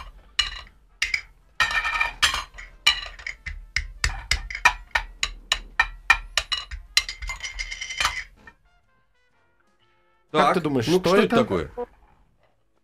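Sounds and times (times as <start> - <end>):
tin lids clinking together: 0.0 - 8.6
speech: 10.3 - 11.9.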